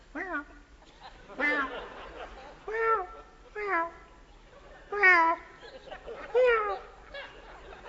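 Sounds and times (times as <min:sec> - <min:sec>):
person imitating cat meows: 0:00.1 - 0:00.6, 0:02.7 - 0:04.0, 0:04.9 - 0:05.5, 0:06.4 - 0:06.8
laughter: 0:00.8 - 0:03.6, 0:04.3 - 0:07.8.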